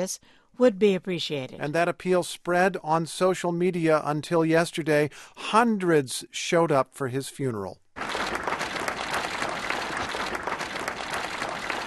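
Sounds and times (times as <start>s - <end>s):
speech: 0.0s - 8.1s
hundreds of people applauding at a funeral as the funeral car arrives: 8.0s - 11.8s.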